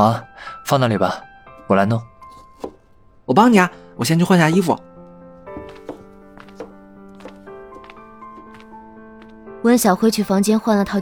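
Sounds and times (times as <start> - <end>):
speech: 0.0 - 2.7, 3.3 - 4.9, 9.6 - 11.0
knife chopping vegetables on a cutting board: 2.3 - 2.8, 5.6 - 7.4.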